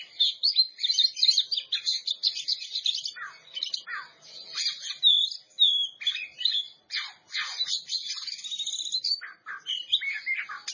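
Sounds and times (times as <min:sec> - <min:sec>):
Oriental magpie-robin singing high chirps and trills: 0:00.0 - 0:10.7.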